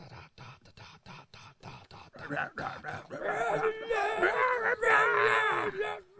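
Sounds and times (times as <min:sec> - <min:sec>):
choppy clipped vocal bursts: 0:00.0 - 0:06.1
person screaming into the microphone with strained howling tone: 0:03.2 - 0:06.1.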